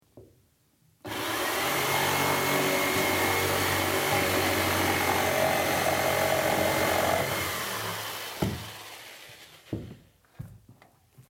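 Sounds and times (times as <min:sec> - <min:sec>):
jigsaw: 0:01.1 - 0:10.0.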